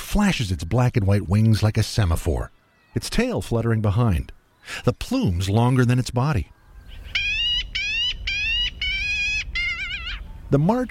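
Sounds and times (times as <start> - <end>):
speech: 0.1 - 6.6, 10.5 - 10.8
black-billed magpie raspy call in bare March trees over open country: 6.8 - 10.8.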